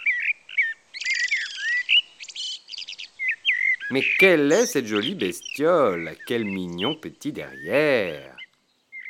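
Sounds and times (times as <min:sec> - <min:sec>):
female blackbirds chirping and chattering in spring sunshine: 0:00.0 - 0:09.0
speech: 0:03.9 - 0:08.4.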